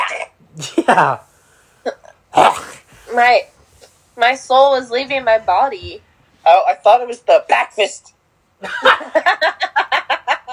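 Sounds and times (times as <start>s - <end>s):
speech: 0.1s - 3.6s, 4.2s - 10.0s
single loud sneeze with catching breaths and voiced exhale: 1.9s - 2.9s.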